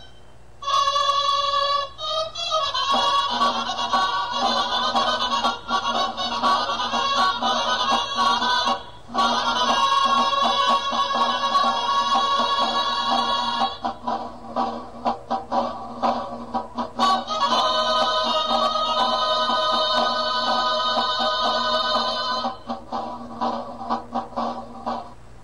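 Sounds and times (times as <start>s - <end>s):
traditional shawms playing human-tower accompaniment tune: 0.6s - 25.2s.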